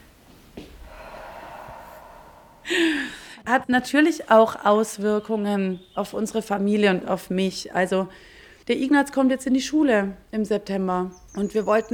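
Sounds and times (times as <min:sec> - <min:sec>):
deep breath drawn in and pushed out: 0:00.7 - 0:03.5, 0:08.1 - 0:08.6
sharp burst of breath: 0:00.9 - 0:03.4
speech: 0:03.5 - 0:11.9.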